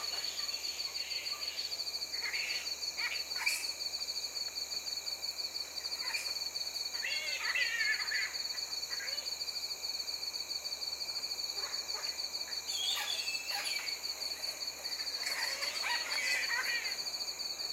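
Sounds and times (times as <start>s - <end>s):
flying fox squabbling calls: 0.0s - 3.8s, 6.0s - 9.4s, 11.6s - 17.2s
steady high insect drone: 0.0s - 17.7s.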